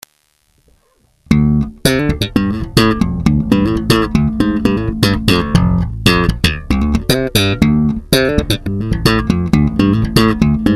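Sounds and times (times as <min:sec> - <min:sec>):
funk music: 0:01.3 - 0:10.7.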